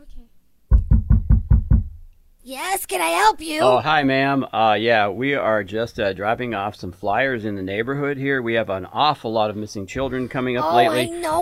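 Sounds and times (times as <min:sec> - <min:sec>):
knocking on a door: 0:00.7 - 0:02.0
speech: 0:02.5 - 0:11.4.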